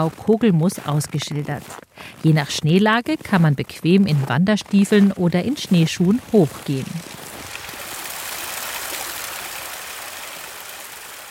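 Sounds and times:
speech: 0.0 - 7.2
babbling mountain stream: 5.8 - 11.2.

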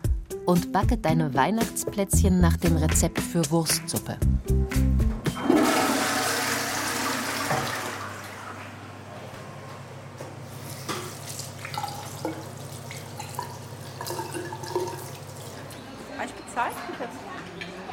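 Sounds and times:
speech: 0.5 - 4.8
toilet flushing: 5.3 - 9.0, 10.5 - 15.9
faint water drips and trickles: 10.9 - 15.8.

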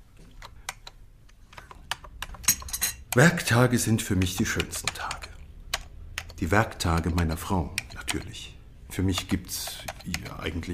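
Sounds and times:
woman typing on a computer keyboard writing books: 0.3 - 3.3, 4.2 - 8.4, 9.1 - 10.4
speech: 3.1 - 5.2, 6.4 - 10.7.

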